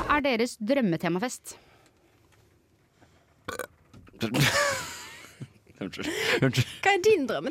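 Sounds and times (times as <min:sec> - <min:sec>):
speech: 0:00.2 - 0:01.7, 0:04.2 - 0:04.9, 0:05.8 - 0:07.4
loud burp: 0:03.5 - 0:04.5
laughter: 0:04.2 - 0:06.9.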